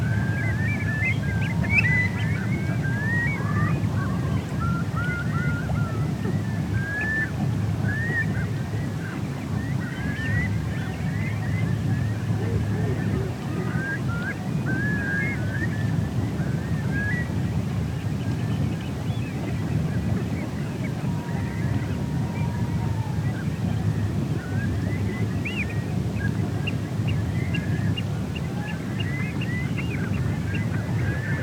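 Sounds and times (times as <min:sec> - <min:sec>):
wind at a coastal nature reserve in December: 0:00.0 - 0:31.4.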